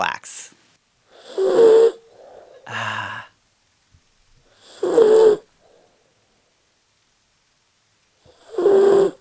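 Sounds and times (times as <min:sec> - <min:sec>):
fluffy white miniature poodle snoring while sleeping in a house: 0:01.1 - 0:02.6, 0:04.5 - 0:05.5, 0:08.2 - 0:09.1.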